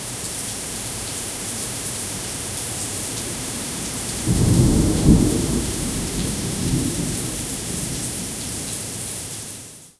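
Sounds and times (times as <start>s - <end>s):
soft rain: 0.0s - 9.9s
distant thunder: 4.3s - 8.0s.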